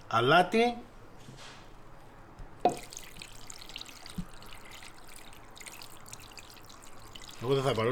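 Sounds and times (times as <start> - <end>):
speech: 0.1 - 1.6, 7.4 - 7.8
water pouring into a pot over chicken wings and drumsticks: 2.7 - 7.8.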